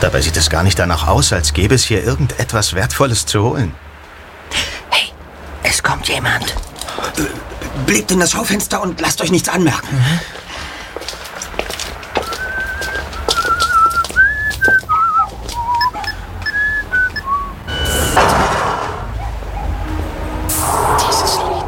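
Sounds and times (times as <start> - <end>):
speech: 0.0 - 3.9, 5.8 - 10.4
rushing street noise: 0.0 - 21.6
footsteps tapping: 10.2 - 17.4
man whistling a lilting song melody: 12.2 - 17.6.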